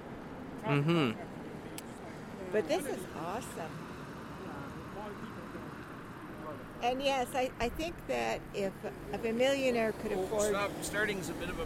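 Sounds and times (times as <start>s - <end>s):
road traffic rumbling on a warm sunny breezy day: 0.0s - 11.6s
speech: 0.6s - 1.3s, 2.5s - 3.9s, 6.5s - 11.6s.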